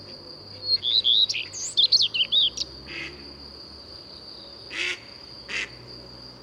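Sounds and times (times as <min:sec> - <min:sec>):
common redstart warbling song: 0:00.5 - 0:02.7.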